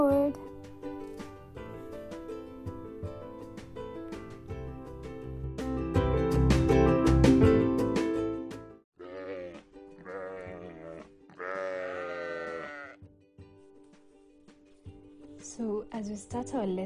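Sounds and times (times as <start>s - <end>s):
busy music-like sound: 0.0s - 16.8s
sheep and goats bleating: 9.0s - 13.0s
speech: 16.2s - 16.8s.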